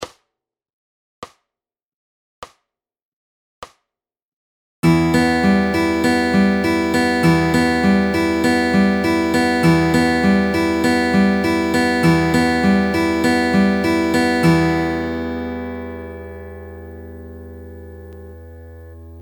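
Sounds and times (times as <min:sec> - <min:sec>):
guitar fingerpicking pattern in E minor: 0:04.8 - 0:19.2.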